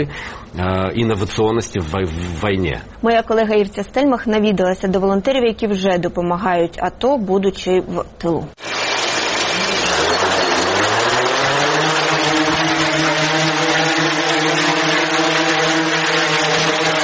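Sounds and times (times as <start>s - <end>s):
speech: 0.0s - 8.7s
small civilian drone motors spinning up in an office: 8.6s - 17.0s.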